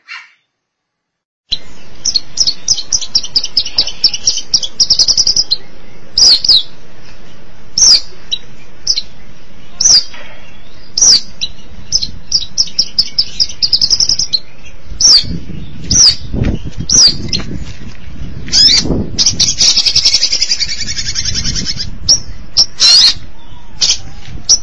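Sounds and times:
long-tailed shrike song of sharp high down-slurred notes: 0:01.5 - 0:24.6
low rumbling noise: 0:01.5 - 0:24.6.

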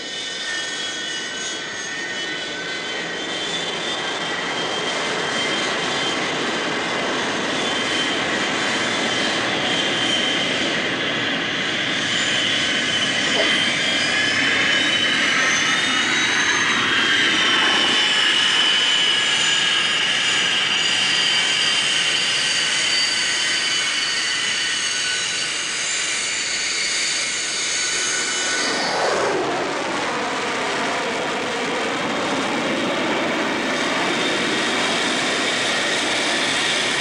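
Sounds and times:
airplane jet engine roar coming in to land: 0:00.0 - 0:36.9.

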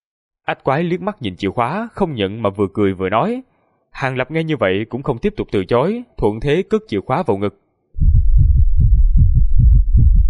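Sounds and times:
speech: 0:00.5 - 0:08.1
rapid heartbeat sound effect: 0:08.0 - 0:10.2.

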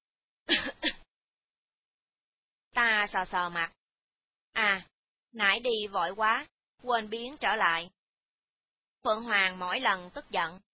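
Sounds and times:
light cough: 0:00.5 - 0:01.1
speech: 0:02.8 - 0:03.8, 0:04.6 - 0:08.0, 0:09.0 - 0:10.7.

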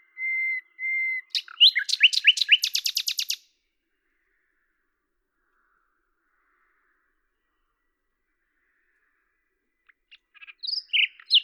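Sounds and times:
common nightingale singing in Lavours France: 0:00.0 - 0:03.5, 0:09.8 - 0:11.4.

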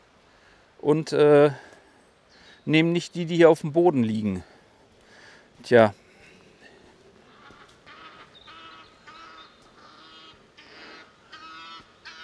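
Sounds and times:
faint noise: 0:00.0 - 0:12.2
speech: 0:00.8 - 0:01.7, 0:02.6 - 0:04.5, 0:05.6 - 0:06.0
geese honking while flying in formation: 0:07.3 - 0:12.2.

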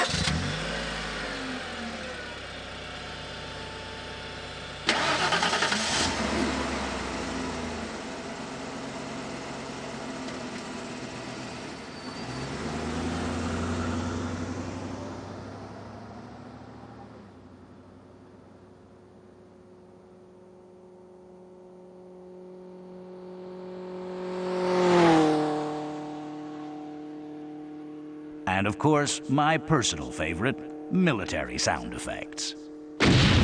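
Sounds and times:
late model car engines starting and running: 0:00.0 - 0:33.3
speech: 0:28.6 - 0:32.6.

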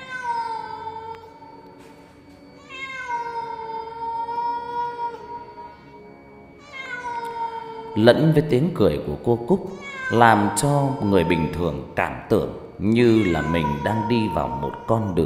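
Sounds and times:
cat yowling in an alley: 0:00.0 - 0:01.4, 0:02.6 - 0:05.8, 0:06.6 - 0:08.0, 0:09.7 - 0:11.9, 0:13.0 - 0:15.2
speech: 0:08.0 - 0:15.2.

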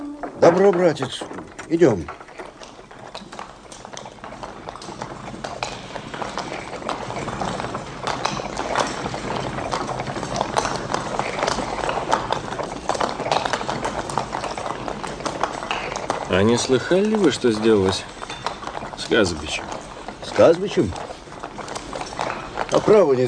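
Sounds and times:
horses' hooves clip-clopping as a carriage sets off: 0:00.0 - 0:23.2
speech: 0:00.4 - 0:02.2, 0:16.4 - 0:18.2, 0:19.1 - 0:19.7, 0:20.3 - 0:21.0, 0:22.8 - 0:23.2.

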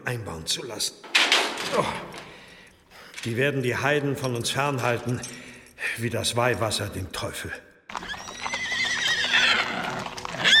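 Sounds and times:
speech: 0:00.0 - 0:02.3, 0:03.2 - 0:07.7
horse hooves clattering on a mountain path: 0:01.0 - 0:05.6, 0:07.9 - 0:10.5
horses neighing on a steep mountain path: 0:07.9 - 0:10.5.

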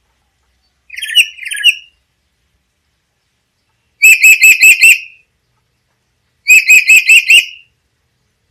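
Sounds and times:
black-capped lory shrill ringing harmonic calls: 0:00.9 - 0:02.0, 0:04.0 - 0:05.3, 0:06.5 - 0:07.7.

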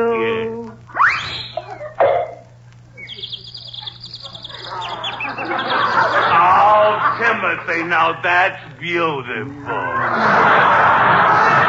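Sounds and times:
low steady hum: 0:00.0 - 0:11.6
sharp swooping bird calls: 0:00.9 - 0:07.1
laughter: 0:01.6 - 0:02.1, 0:03.0 - 0:08.8, 0:09.4 - 0:11.6
birds chirping and singing: 0:03.0 - 0:07.1
speech: 0:07.7 - 0:10.9.

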